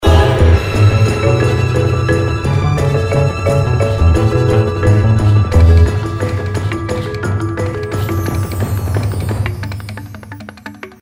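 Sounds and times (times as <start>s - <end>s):
feature music: 0.0s - 11.0s.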